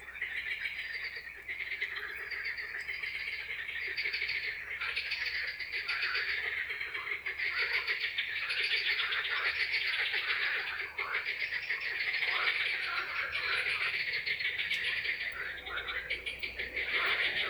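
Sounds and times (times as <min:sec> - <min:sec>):
frog chorus trilling in Czechia: 0:00.0 - 0:17.4.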